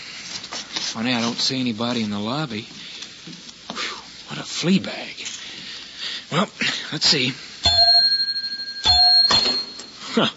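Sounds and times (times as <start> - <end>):
speech: 0.9 - 3.4, 4.6 - 5.3, 6.3 - 7.5, 10.2 - 10.3
desk bell dinging: 7.7 - 10.0.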